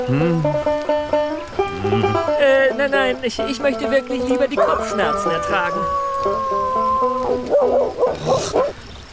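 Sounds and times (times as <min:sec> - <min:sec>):
speech: 0:00.1 - 0:00.7, 0:01.9 - 0:08.7
dog howling: 0:04.5 - 0:08.7.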